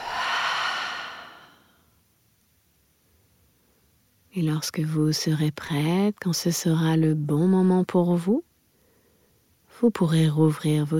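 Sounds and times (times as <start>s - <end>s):
deep breathy mouth exhale: 0.0s - 1.8s
speech: 4.4s - 8.5s, 9.8s - 10.9s.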